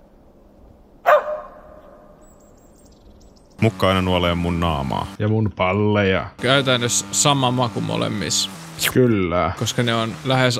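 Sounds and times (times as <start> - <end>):
single sharp dog bark: 1.0 - 2.0
speech: 3.6 - 10.5.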